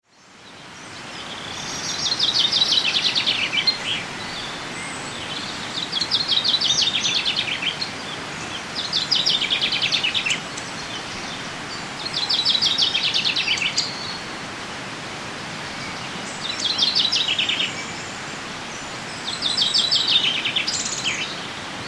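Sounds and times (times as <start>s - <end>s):
common chaffinch Fringilla coelebs singing: 0.2s - 14.4s, 15.6s - 21.8s.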